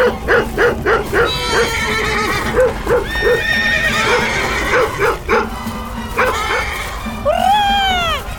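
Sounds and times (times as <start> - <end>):
dog barking at horses: 0.0 - 1.7, 2.4 - 3.5, 4.1 - 5.6, 6.2 - 6.7
frightened horses neighing and whinnying: 0.0 - 8.3
horses galloping with drumming hooves: 0.0 - 8.3.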